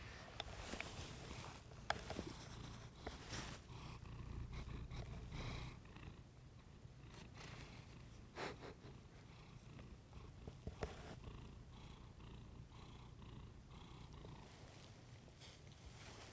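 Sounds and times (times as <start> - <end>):
soft rustling in bed: 0.0 - 3.8, 14.3 - 16.3
male cat purring in bed: 0.0 - 16.3.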